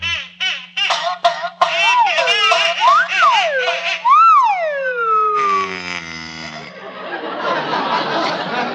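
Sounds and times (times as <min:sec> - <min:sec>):
wind-up toy duck quacking in squeaky nasal honks: 0:00.0 - 0:06.8
laughter: 0:06.7 - 0:08.7.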